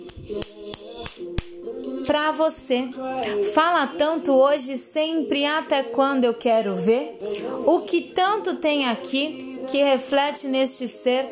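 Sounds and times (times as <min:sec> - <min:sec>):
hand claps: 0:00.0 - 0:02.1
speech: 0:02.1 - 0:11.3.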